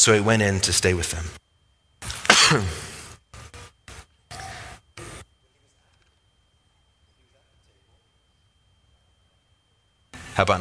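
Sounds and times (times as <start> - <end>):
speech: 0.0 - 1.4, 2.5 - 2.9, 10.4 - 10.5
harsh coughing into a microphone: 2.0 - 4.8.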